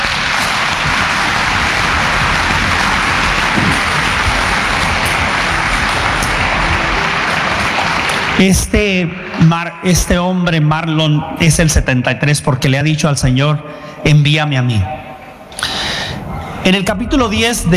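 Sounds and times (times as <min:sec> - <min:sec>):
audience clapping: 0:00.0 - 0:11.0
speech: 0:08.4 - 0:15.7, 0:16.6 - 0:17.7.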